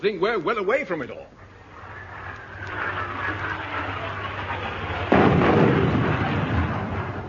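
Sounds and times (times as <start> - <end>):
speech: 0.0 - 1.4
artillery shelling rumble: 1.7 - 7.2
sharp loud artillery blast: 1.7 - 7.2.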